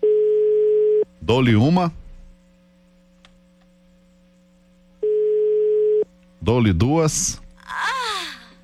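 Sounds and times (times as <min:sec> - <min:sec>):
telephone ringing tone while waiting for the call to be answered: 0:00.0 - 0:01.0, 0:05.0 - 0:06.0
faint low hum: 0:00.0 - 0:08.6
speech: 0:01.3 - 0:02.0, 0:06.5 - 0:07.4.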